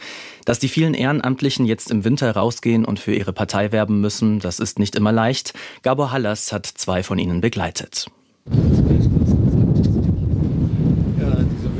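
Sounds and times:
speech: 0.5s - 9.1s
strong wind buffeting a political party flag and a pavilion tent in winter cold: 8.5s - 11.7s.

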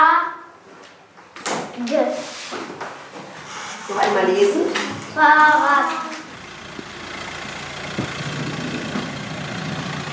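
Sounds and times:
speech: 4.2s - 6.0s
mail van engine idling: 4.9s - 10.1s.

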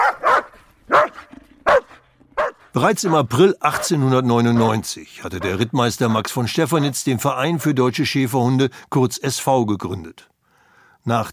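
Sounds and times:
dog barking sharply: 0.0s - 4.0s
speech: 2.8s - 10.3s, 11.0s - 11.3s.

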